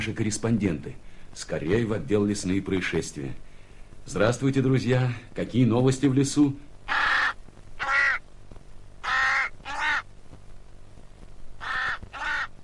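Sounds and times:
speech: 0.0 - 7.0
raven calling in a snowy forest in late winter: 6.8 - 8.3, 9.0 - 10.1, 11.6 - 12.6.

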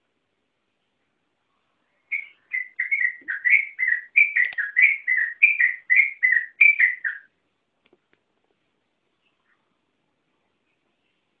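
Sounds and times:
yellow-vented bulbul song of warbled whistled notes: 2.0 - 7.4.

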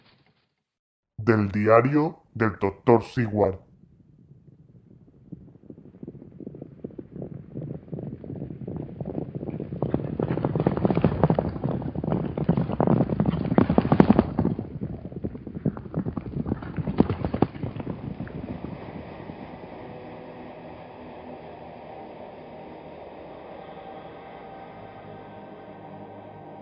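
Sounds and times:
speech: 1.2 - 3.6
horses galloping: 5.0 - 19.6.

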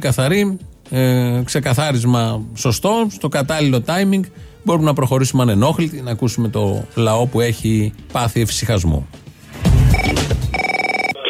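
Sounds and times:
speech: 0.0 - 9.2
telephone ringing for an incoming call: 9.9 - 11.2.

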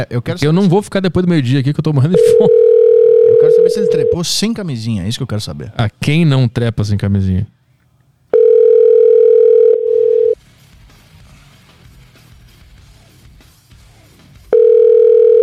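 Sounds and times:
speech: 0.0 - 7.6
ringback tone of an outgoing telephone call: 2.2 - 4.3, 8.4 - 10.4, 14.6 - 15.4.

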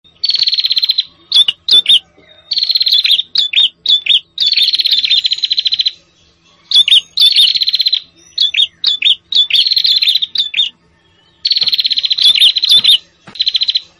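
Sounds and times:
prinia trills and chip notes: 0.1 - 13.9.

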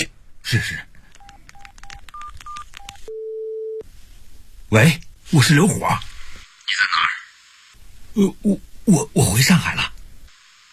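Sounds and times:
speech: 0.0 - 0.9, 4.7 - 6.1, 8.2 - 9.9
mobile phone keypad beeps while dialing: 1.2 - 3.8.

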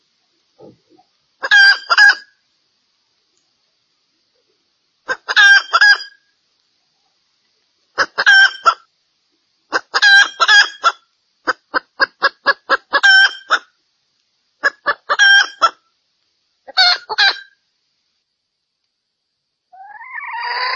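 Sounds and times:
female junglefowl clucking: 0.6 - 2.4, 5.0 - 6.2, 8.0 - 8.9, 9.7 - 13.7, 14.6 - 15.8, 16.7 - 17.6, 19.8 - 20.7.

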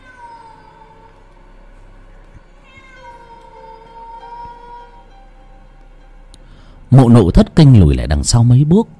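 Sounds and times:
cat meowing on a bed: 0.0 - 1.2, 2.6 - 5.1
low hum: 0.0 - 8.9
speech: 6.9 - 8.9.

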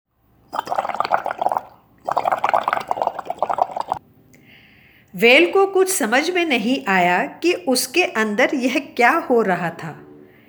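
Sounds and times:
water splashing and bubbling: 0.5 - 4.0
speech: 5.2 - 10.0.

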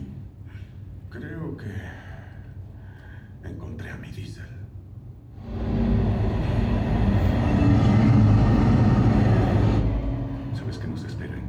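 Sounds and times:
speech: 1.2 - 2.1
moving overnight passenger train interior rumble: 5.4 - 11.4.

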